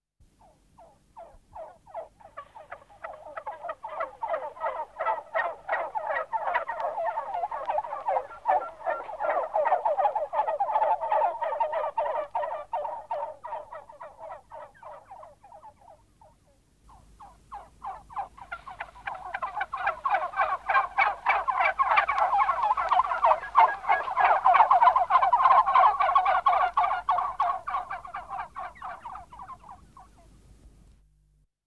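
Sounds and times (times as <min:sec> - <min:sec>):
seagulls: 0:00.4 - 0:30.3.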